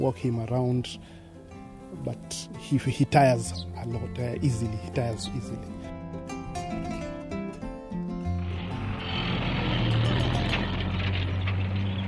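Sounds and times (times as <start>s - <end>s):
speech: 0.0s - 1.2s, 1.9s - 5.8s
heavy food lorry engine rumbling: 6.6s - 12.0s.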